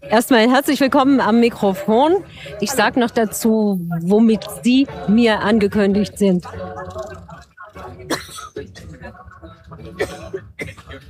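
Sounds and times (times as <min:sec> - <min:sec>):
low murmur of voices: 0:00.0 - 0:11.0
speech: 0:00.1 - 0:07.1, 0:08.0 - 0:10.4
person coughing sharply: 0:08.1 - 0:08.8, 0:10.0 - 0:11.0.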